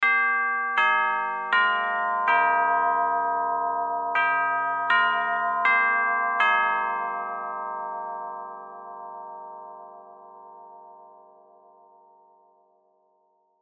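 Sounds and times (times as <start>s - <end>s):
melody clock chimes: 0.0s - 9.9s.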